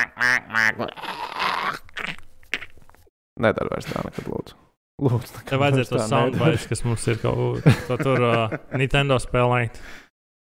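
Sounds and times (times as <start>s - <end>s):
duck quacking: 0.0s - 1.0s
speech: 0.0s - 1.1s, 3.4s - 10.0s
laughter: 5.7s - 8.9s.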